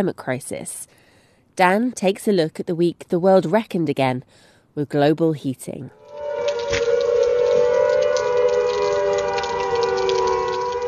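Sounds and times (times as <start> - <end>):
speech: 0.0 - 1.0, 1.6 - 6.0
World War II air raid siren wailing in a Yorkshire village warning of floods: 6.0 - 10.8.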